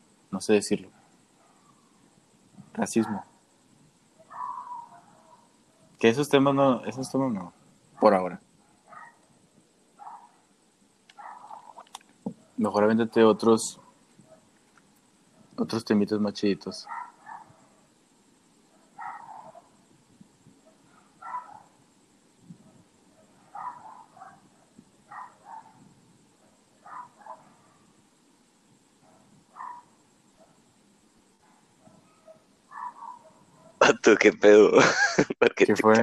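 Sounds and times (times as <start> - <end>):
speech: 0.3 - 1.0, 2.8 - 3.3, 6.0 - 8.4, 12.6 - 13.8, 15.6 - 17.0, 34.1 - 36.0
dog barking: 0.8 - 3.5, 4.1 - 6.0, 7.9 - 12.7, 13.4 - 14.6, 16.6 - 18.0, 18.6 - 19.9, 20.6 - 21.8, 22.5 - 28.0, 28.9 - 30.7, 31.4 - 33.9
laughter: 33.8 - 35.6.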